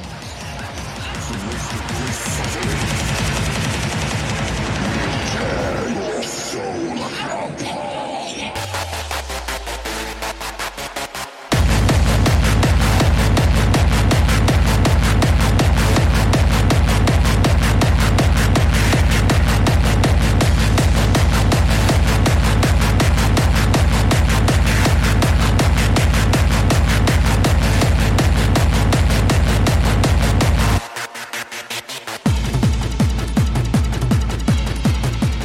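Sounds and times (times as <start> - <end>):
dense distorted synths in hardcore electronic dance track: 0.0 - 35.4
pounding kick drums in hardcore electronic dance track: 0.3 - 5.2, 11.5 - 30.8, 32.2 - 35.4.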